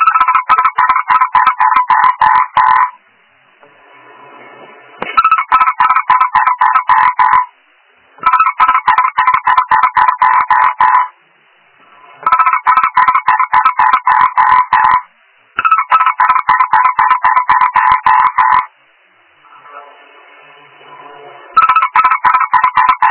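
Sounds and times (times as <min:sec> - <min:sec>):
frog croaking in harsh pulses: 0:00.0 - 0:03.0, 0:05.2 - 0:07.6, 0:08.2 - 0:11.2, 0:12.2 - 0:18.7, 0:21.6 - 0:23.0.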